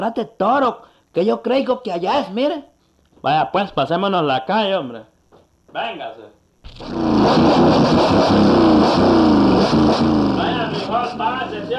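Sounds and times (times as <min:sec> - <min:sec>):
speech: 0:00.0 - 0:05.1, 0:05.7 - 0:09.2, 0:10.9 - 0:11.7
two motorcycles roaring past side by side: 0:06.8 - 0:11.7.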